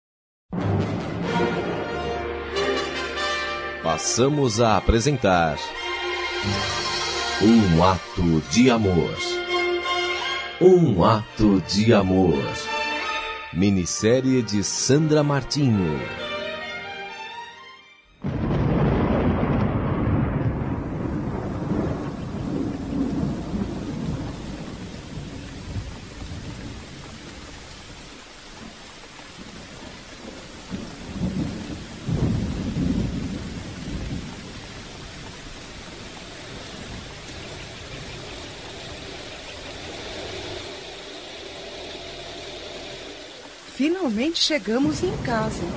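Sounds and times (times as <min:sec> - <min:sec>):
heavy winter rain: 0:00.6 - 0:17.0, 0:18.2 - 0:45.7
deep rumbles of thunder: 0:03.8 - 0:09.4, 0:18.2 - 0:45.7
speech: 0:03.9 - 0:09.4, 0:10.6 - 0:12.8, 0:13.5 - 0:16.3, 0:44.3 - 0:45.7
car engine idling: 0:36.6 - 0:44.3.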